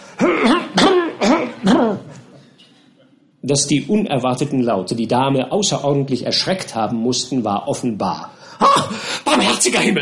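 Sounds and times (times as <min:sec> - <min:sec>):
man coughing loudly behind curtains: 0:00.0 - 0:02.3
speech: 0:03.4 - 0:09.9.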